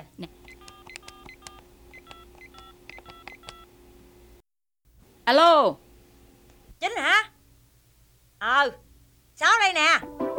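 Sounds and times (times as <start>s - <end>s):
telephone touch-tone dialing beeps: 0.5s - 3.6s
speech: 5.3s - 5.8s, 8.4s - 8.8s, 9.4s - 10.3s.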